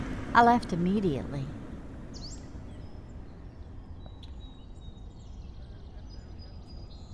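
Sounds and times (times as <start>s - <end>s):
speech: 0.3s - 1.6s
birds singing: 2.1s - 7.1s.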